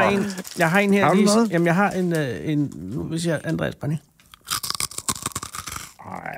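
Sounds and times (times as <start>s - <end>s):
person biting into a crunchy snack: 0.0s - 1.5s, 4.2s - 6.3s
speech: 0.1s - 4.1s
vocal murmur: 6.0s - 6.3s.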